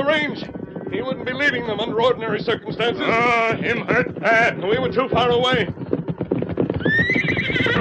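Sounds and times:
speech: 0:00.0 - 0:05.8
horse hooves clip-clopping: 0:00.0 - 0:07.7
saddled horse whinnying loudly: 0:06.6 - 0:07.7.

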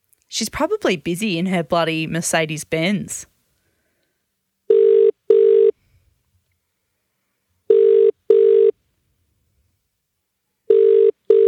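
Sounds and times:
speech: 0:00.4 - 0:03.3
phone ringback tone on an outgoing call: 0:04.7 - 0:05.8, 0:07.7 - 0:08.8, 0:10.7 - 0:11.4.

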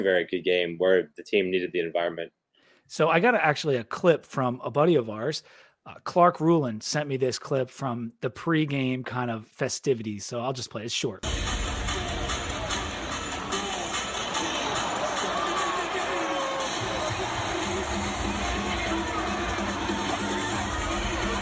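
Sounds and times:
speech: 0:00.0 - 0:11.5
packed arena crowd roaring and cheering: 0:11.7 - 0:21.4
indistinct voices shouting: 0:12.0 - 0:21.4.

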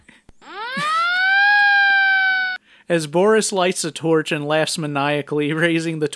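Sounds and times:
police siren wailing: 0:00.4 - 0:02.6
speech: 0:02.9 - 0:06.1.

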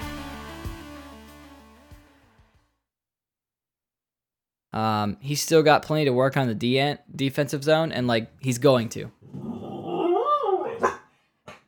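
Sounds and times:
speech: 0:04.8 - 0:09.4
dog barking and howling: 0:09.5 - 0:11.1.

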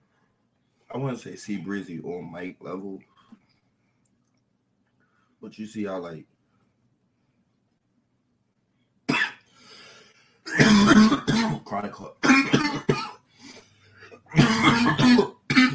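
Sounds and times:
speech: 0:00.9 - 0:03.2, 0:05.4 - 0:06.3, 0:11.7 - 0:12.6
person with a chronic cough coughing: 0:09.1 - 0:09.4, 0:10.5 - 0:13.2, 0:14.0 - 0:15.7
throat clearing: 0:10.5 - 0:13.2, 0:14.0 - 0:15.7.

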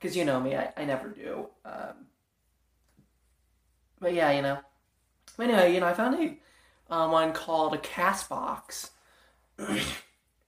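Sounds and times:
speech: 0:00.0 - 0:02.1, 0:04.0 - 0:04.7, 0:05.3 - 0:09.0, 0:09.6 - 0:10.0
brief exhale: 0:06.4 - 0:06.9
person sneezing: 0:09.6 - 0:10.2.

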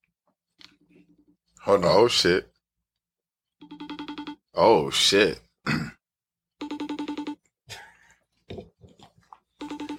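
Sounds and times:
speech: 0:01.6 - 0:02.5, 0:04.6 - 0:05.4
phone ringing on an outgoing call: 0:03.6 - 0:04.6, 0:06.6 - 0:07.4, 0:09.6 - 0:09.9.

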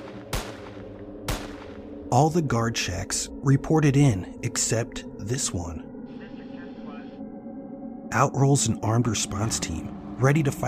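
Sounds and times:
gunshots: 0:00.0 - 0:01.8
speech: 0:02.1 - 0:05.9, 0:08.1 - 0:10.6.

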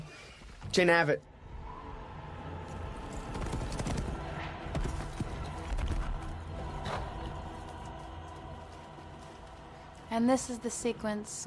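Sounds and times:
speech: 0:00.7 - 0:01.3, 0:10.2 - 0:11.4
horse hooves clattering as a horsewoman rides at speed: 0:03.0 - 0:09.7.

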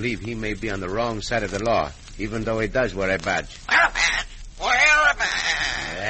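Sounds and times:
speech: 0:00.0 - 0:04.2
parrot squawking: 0:03.7 - 0:06.0.

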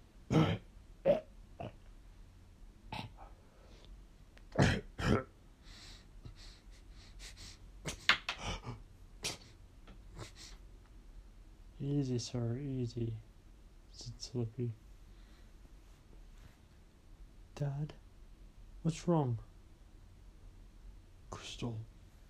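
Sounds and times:
raspy wheezing cough: 0:00.3 - 0:01.8, 0:04.5 - 0:05.3
throat clearing: 0:00.3 - 0:01.8, 0:04.5 - 0:05.3
strained wheezy breaths: 0:05.6 - 0:07.7, 0:08.4 - 0:10.6
speech: 0:12.0 - 0:13.3, 0:14.3 - 0:14.8, 0:17.6 - 0:18.0, 0:18.8 - 0:19.5, 0:21.6 - 0:21.9.

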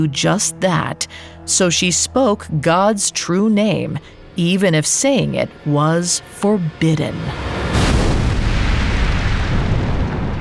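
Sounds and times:
speech: 0:00.0 - 0:07.9
white-hot fireball blasting down from the sky: 0:07.6 - 0:10.3.

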